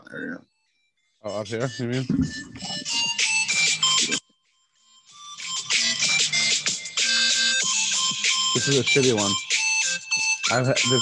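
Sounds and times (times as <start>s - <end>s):
speech: 1.2s - 3.1s, 8.7s - 9.5s, 10.5s - 11.0s
Christmas trap music with jingly bell-like melody through a small phone speaker: 1.2s - 11.0s.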